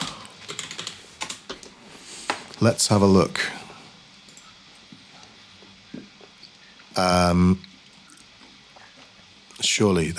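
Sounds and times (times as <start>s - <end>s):
mechanical keyboard clacking: 0.0s - 1.6s
speech: 2.6s - 3.6s, 7.0s - 7.7s, 9.8s - 10.1s.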